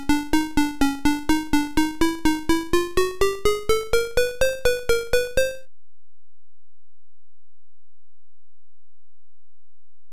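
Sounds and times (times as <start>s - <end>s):
chromatic scales: 0.1s - 5.6s.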